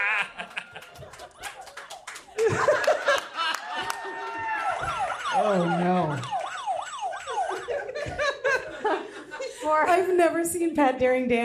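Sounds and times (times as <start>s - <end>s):
people laughing: 0.0s - 10.2s
police siren wailing: 3.4s - 9.0s
speech: 10.2s - 11.4s.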